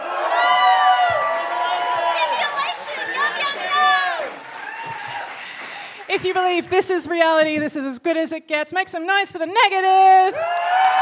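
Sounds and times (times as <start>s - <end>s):
debate audience cheering, whooping, shouting and yelling: 0.0s - 6.1s, 10.3s - 11.0s
speech: 6.2s - 10.6s.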